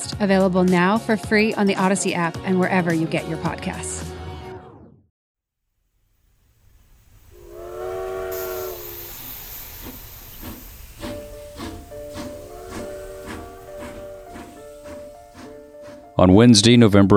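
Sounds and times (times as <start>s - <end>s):
speech: 0.2s - 4.1s, 16.2s - 17.1s
steam locomotive steady rhythmic chuffing pulling four-car B&O Railroad train: 7.1s - 16.8s
steam locomotive whistle: 7.2s - 16.2s.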